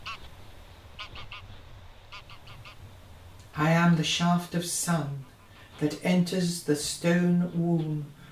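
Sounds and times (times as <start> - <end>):
flock of migrating geese honking: 0.0 - 6.2
migrating geese wing beats: 0.0 - 6.2
steady low rumble: 0.0 - 8.2
speech: 3.6 - 8.2.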